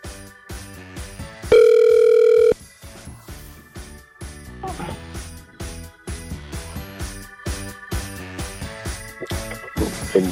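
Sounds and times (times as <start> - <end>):
music: 0.0 - 10.3
ringback tone of an outgoing phone call during a radio phone-in game: 1.5 - 2.6.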